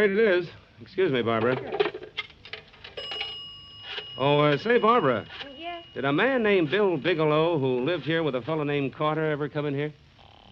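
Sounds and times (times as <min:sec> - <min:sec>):
speech: 0:00.0 - 0:01.9, 0:04.2 - 0:10.0
telephone ringing with metallic bell tone: 0:02.8 - 0:08.5.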